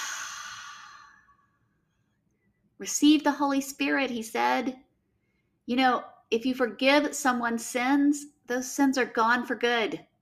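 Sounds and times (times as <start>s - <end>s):
deep breath exhaled as a soft breathy hiss: 0.0s - 1.4s
speech: 2.8s - 4.8s, 5.7s - 10.1s.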